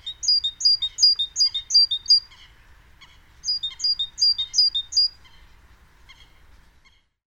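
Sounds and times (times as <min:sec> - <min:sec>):
great tit Parus major calling: 0:00.0 - 0:05.2.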